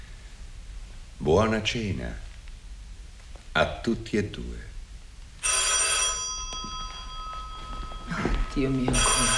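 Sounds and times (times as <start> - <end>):
speech: 1.2 - 2.2, 3.6 - 4.7, 8.6 - 9.3
old-fashioned telephone bell ringing: 5.4 - 9.3.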